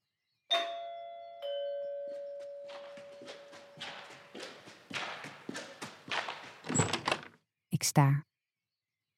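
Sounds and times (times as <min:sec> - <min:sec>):
doorbell chiming two ringing tones: 0:00.5 - 0:03.0
quick rhythmic thudding footsteps: 0:02.4 - 0:07.4
speech: 0:07.8 - 0:08.3.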